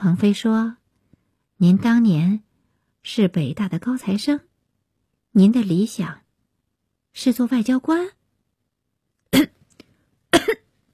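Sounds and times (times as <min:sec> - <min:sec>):
speech: 0:00.0 - 0:00.8, 0:01.6 - 0:02.4, 0:03.0 - 0:04.5, 0:05.3 - 0:06.2, 0:07.2 - 0:08.2
man coughing with a choking cough: 0:10.3 - 0:10.7.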